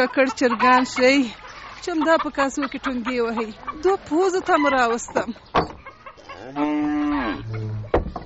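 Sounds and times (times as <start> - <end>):
speech: 0.0 - 5.8, 6.4 - 7.7
cow mooing: 6.2 - 7.9.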